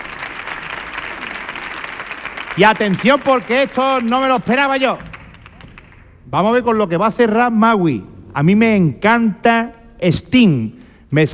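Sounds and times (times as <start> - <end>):
concert audience applauding a guitarist returning to the stage: 0.0 - 6.2
speech: 2.6 - 5.1, 6.3 - 11.3.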